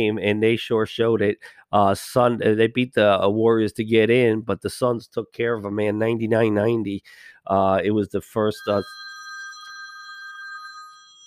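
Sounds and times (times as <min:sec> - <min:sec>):
speech: 0:00.0 - 0:09.0
mobile phone ringing during a live broadcast: 0:08.5 - 0:11.2.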